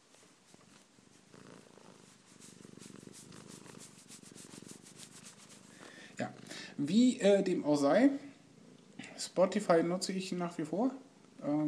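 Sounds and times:
cat purring: 0.0 - 7.3
speech: 6.2 - 8.3, 9.4 - 11.6.

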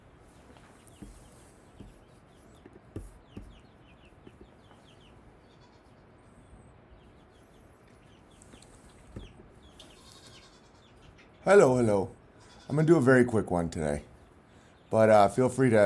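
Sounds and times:
steady outdoor hum: 0.0 - 12.8
chickens clucking: 0.2 - 11.4
speech: 11.5 - 14.1, 14.9 - 15.8.

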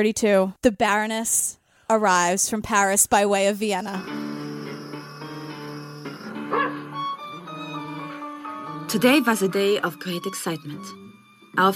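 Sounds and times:
speech: 0.0 - 4.4, 8.9 - 11.0
dog barking and yipping: 6.1 - 7.7.

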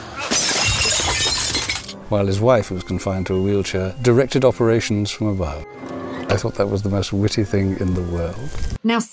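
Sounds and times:
glass wine bottles smashing: 0.2 - 2.0
speech: 2.1 - 9.1.

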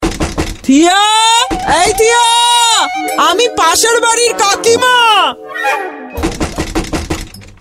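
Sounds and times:
someone banging hard on a door: 0.0 - 2.3, 6.2 - 7.5
speech: 0.7 - 6.4.

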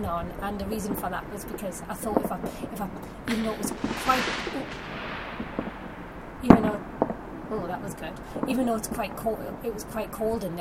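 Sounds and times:
speech: 0.0 - 5.1, 7.6 - 10.5
hiss: 0.0 - 10.5
fireworks popping and cracking outside on a cold night: 2.1 - 8.6.

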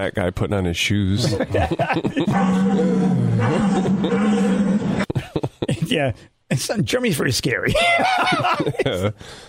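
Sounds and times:
speech: 0.0 - 4.8, 5.9 - 9.4
laughter: 1.2 - 3.0, 3.6 - 5.9, 7.7 - 9.2
deer roaring bellow: 2.3 - 5.0.

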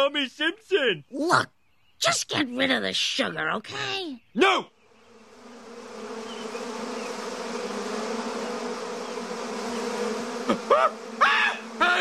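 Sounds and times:
speech: 0.0 - 4.8, 10.5 - 11.0
many bees buzzing: 4.7 - 11.9.

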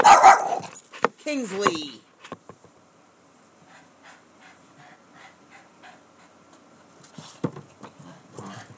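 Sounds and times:
dog barking: 0.0 - 0.8
speech: 1.3 - 2.0
dog panting: 3.6 - 6.6.

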